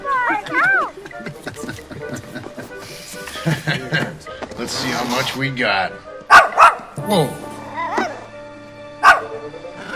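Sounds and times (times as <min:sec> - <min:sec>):
laughter: 0:00.2 - 0:04.4
speech: 0:04.7 - 0:06.1, 0:07.1 - 0:07.5
chihuahua yipping with a whiny whimpering edge: 0:06.3 - 0:06.9, 0:09.0 - 0:09.3.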